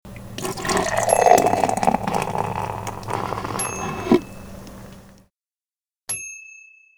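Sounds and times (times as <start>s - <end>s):
beer or soda being poured: 0.0s - 5.2s.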